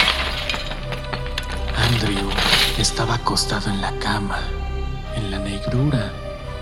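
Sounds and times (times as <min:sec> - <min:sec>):
glass shards tinkling: 0:00.0 - 0:02.8
glass patio door shattering: 0:00.0 - 0:03.0
speech: 0:02.0 - 0:06.3.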